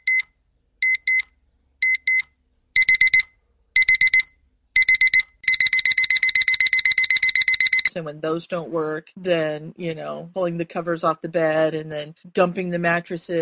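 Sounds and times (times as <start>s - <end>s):
shrill electronic alarm clock beeping: 0.0s - 7.9s
speech: 8.0s - 13.4s.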